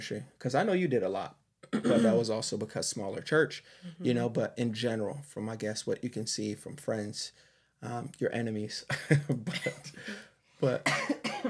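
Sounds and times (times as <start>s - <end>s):
speech: 0.0s - 11.4s
person coughing harshly from a lingering coughing bug: 1.6s - 2.4s, 8.9s - 11.4s.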